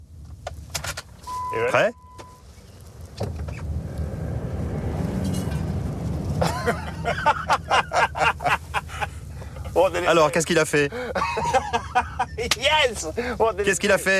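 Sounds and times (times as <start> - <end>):
car pulling away and driving forward: 0.0 - 14.1
speech: 1.5 - 2.0, 6.6 - 7.5, 9.9 - 11.8, 12.4 - 14.1
laughter: 6.4 - 9.2, 11.0 - 12.6.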